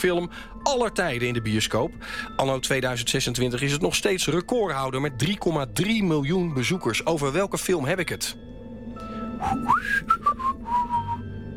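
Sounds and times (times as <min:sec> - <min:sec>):
speech: 0:00.0 - 0:08.6, 0:09.4 - 0:10.3
low steady hum: 0:00.0 - 0:11.5
person whistling a short melodic phrase as a quiz hint: 0:09.4 - 0:11.5.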